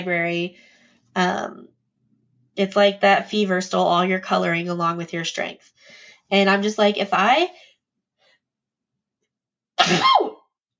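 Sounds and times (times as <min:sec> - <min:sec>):
speech: 0:00.0 - 0:01.8, 0:02.6 - 0:07.7, 0:09.8 - 0:10.3
sneeze: 0:09.8 - 0:10.5.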